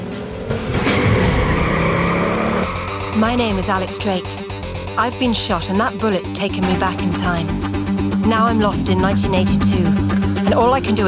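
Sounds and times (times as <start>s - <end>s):
car engine revving and roaring away through a darkened underpass: 0.0s - 3.2s
car tires squealing while accelerating: 0.0s - 4.2s
speech: 3.2s - 4.4s, 5.0s - 11.0s.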